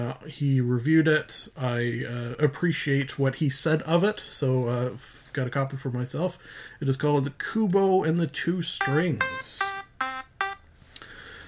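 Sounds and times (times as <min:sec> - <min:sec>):
speech: 0:00.0 - 0:09.7
timer buzzer: 0:08.8 - 0:10.6.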